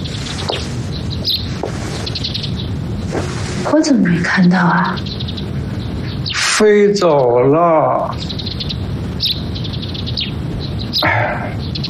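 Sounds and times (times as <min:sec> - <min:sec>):
steady rushing noise: 0:00.0 - 0:11.8
two birds chirping: 0:00.0 - 0:11.8
speech: 0:03.7 - 0:05.1, 0:06.6 - 0:08.3.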